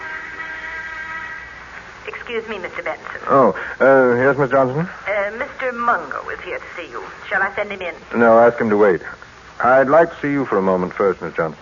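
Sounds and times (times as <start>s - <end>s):
office intercom phone buzzing: 0.0s - 8.6s
speech: 2.0s - 11.6s.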